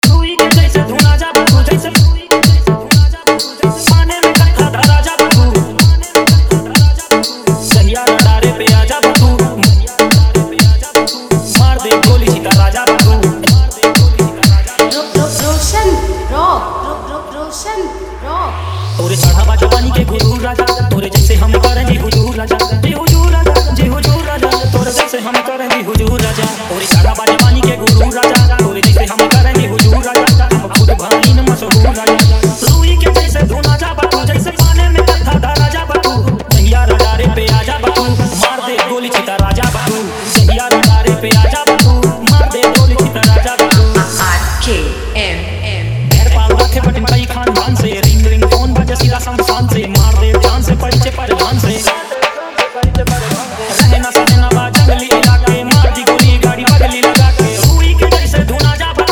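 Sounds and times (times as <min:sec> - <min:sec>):
Bhojpuri song mix: 0:00.0 - 0:59.0.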